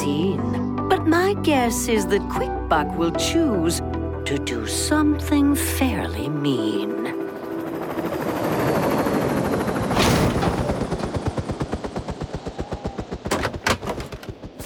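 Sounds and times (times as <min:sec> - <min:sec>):
speech: 0:01.0 - 0:07.1
helicopter rotor beating while arriving: 0:05.7 - 0:14.6.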